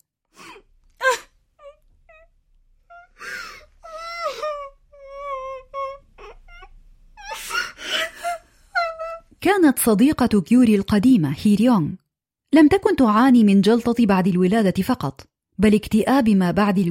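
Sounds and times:
woman crying and wailing outside a doctor's office at a clinic: 0:01.0 - 0:02.3, 0:02.9 - 0:09.4
speech: 0:09.6 - 0:16.8.

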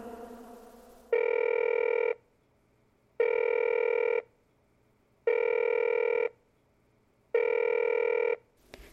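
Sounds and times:
telephone ringing: 0:01.1 - 0:02.2, 0:03.2 - 0:04.3, 0:05.3 - 0:06.4, 0:07.3 - 0:08.5.

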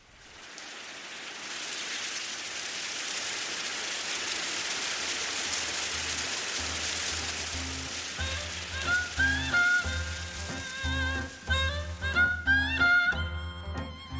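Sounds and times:
green bamboo leaves rustling in the wind in a bamboo grove on Mount Kimsan: 0:00.0 - 0:12.5
gentle melodic music bed: 0:06.9 - 0:14.1.

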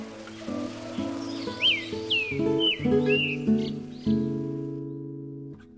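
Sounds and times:
bird chirps on a quiet walking path: 0:00.0 - 0:04.4
steady music: 0:00.0 - 0:05.4.

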